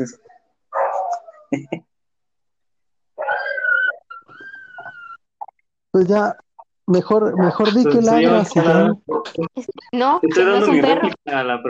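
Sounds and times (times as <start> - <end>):
speech: 0.0 - 0.3, 1.5 - 1.9, 6.0 - 11.6
puppy whimpering at home: 3.2 - 5.6
laughter: 9.2 - 11.6.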